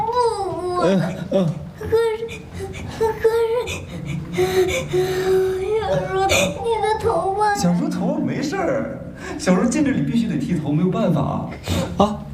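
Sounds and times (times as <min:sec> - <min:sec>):
child crying and whimpering: 0:00.0 - 0:07.8
speech: 0:00.8 - 0:02.3, 0:03.0 - 0:12.2
child's shaky breaths: 0:01.6 - 0:05.6.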